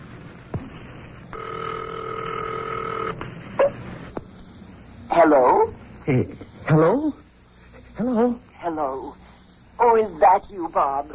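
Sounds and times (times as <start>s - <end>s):
telephone ringing tone over the line: 1.3s - 3.2s
speech: 5.2s - 7.2s, 8.0s - 9.2s, 9.8s - 11.1s.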